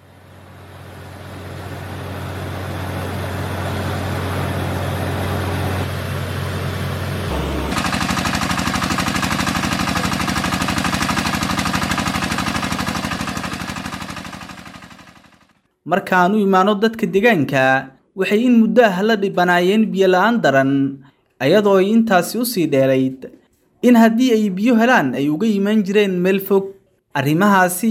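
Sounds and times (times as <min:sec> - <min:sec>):
drilling rig engine droning while boring a water well: 0:00.0 - 0:15.5
speech: 0:15.9 - 0:27.8.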